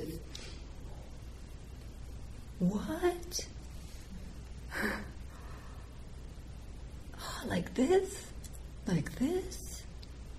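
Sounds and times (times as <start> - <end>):
quiet noise: 0.0 - 10.3
speech: 2.6 - 3.6, 7.4 - 8.3, 8.9 - 9.6
short soft breath in a gentle breathing exercise: 3.7 - 6.1.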